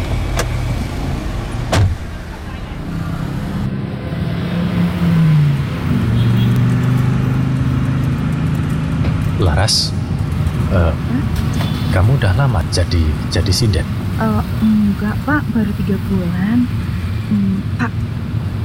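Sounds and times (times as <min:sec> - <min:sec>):
car engine running with a steady low hum: 0:00.0 - 0:18.6
sharp thud: 0:01.7 - 0:02.2
speech: 0:09.6 - 0:10.0, 0:12.0 - 0:18.1.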